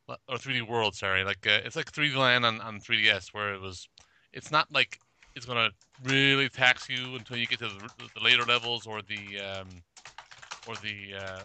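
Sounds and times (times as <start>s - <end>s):
speech: 0.4s - 9.9s, 10.6s - 11.4s
loud computer keyboard typing picked up by an open microphone during a video call: 5.0s - 11.4s.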